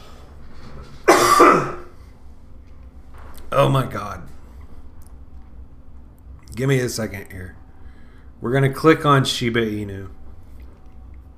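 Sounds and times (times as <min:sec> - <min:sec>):
loud raspy cough with throat clearing: 0:01.0 - 0:02.0
speech: 0:03.6 - 0:04.3, 0:06.6 - 0:07.6, 0:08.4 - 0:10.2.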